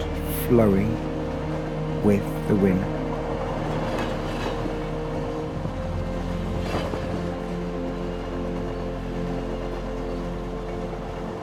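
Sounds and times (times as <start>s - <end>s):
train rolling on rails heard from inside the carriage: 0.0s - 11.4s
speech: 0.5s - 1.1s, 2.0s - 3.0s.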